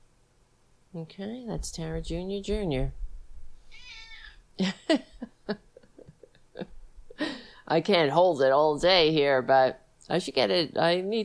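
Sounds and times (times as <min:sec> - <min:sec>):
speech: 0:00.9 - 0:03.0, 0:04.6 - 0:05.7, 0:07.7 - 0:11.2
cat meowing: 0:03.7 - 0:04.4.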